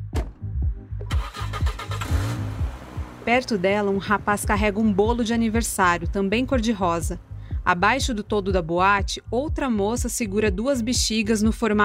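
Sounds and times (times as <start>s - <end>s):
black car engine cranking and pulling out of a nightclub parking lot: 0.1s - 7.9s
speech: 3.3s - 11.8s.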